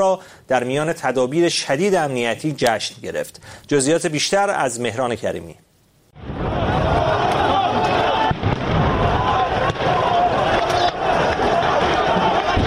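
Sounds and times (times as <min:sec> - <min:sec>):
speech: 0:00.0 - 0:06.3
dense continuous roar of crowd noise and commotion: 0:06.2 - 0:12.6
sharp explosions in Jerusalem: 0:06.2 - 0:12.6.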